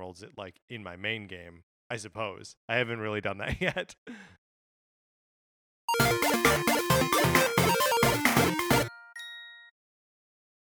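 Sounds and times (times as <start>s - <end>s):
speech: 0.0s - 4.4s
phone notification electronic jingle of rapid repeated chords: 5.9s - 9.0s
phone notification chime: 8.8s - 9.8s.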